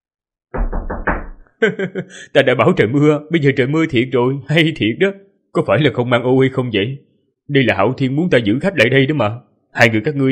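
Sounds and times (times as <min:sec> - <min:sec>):
loud knocking on the main door of a manor: 0:00.6 - 0:01.4
laughter: 0:01.6 - 0:02.4
speech: 0:01.6 - 0:10.2.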